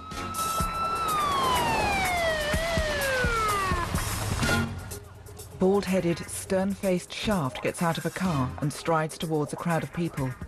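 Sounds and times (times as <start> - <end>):
police car siren wailing on a street at night: 0.0 - 4.2
speech: 5.6 - 10.4.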